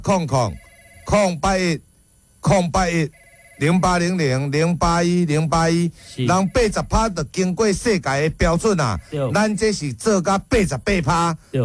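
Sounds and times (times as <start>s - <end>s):
speech: 0.0s - 11.6s
telephone ringing: 0.4s - 1.3s, 3.1s - 4.2s, 6.3s - 7.2s.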